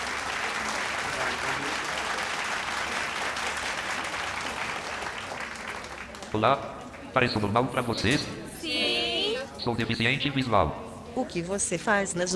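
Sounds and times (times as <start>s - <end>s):
crowd of students applauding: 0.0s - 7.6s
speech: 6.3s - 8.8s, 9.6s - 12.3s.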